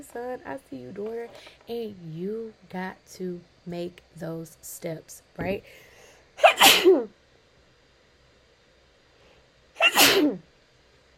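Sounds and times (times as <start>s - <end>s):
speech: 0.0s - 5.9s, 6.6s - 7.2s, 10.2s - 10.5s
person sneezing: 6.4s - 7.0s, 9.8s - 10.4s.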